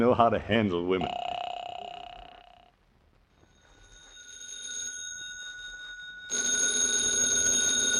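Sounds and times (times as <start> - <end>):
speech: 0.0 - 1.3
old-fashioned telephone bell ringing: 1.0 - 2.7, 3.4 - 7.9.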